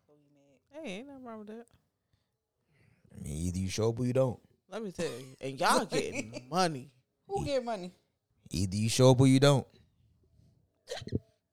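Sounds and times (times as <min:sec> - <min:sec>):
speech: 0:00.7 - 0:01.8, 0:03.2 - 0:09.8, 0:10.9 - 0:11.2
hiccup: 0:10.9 - 0:11.2.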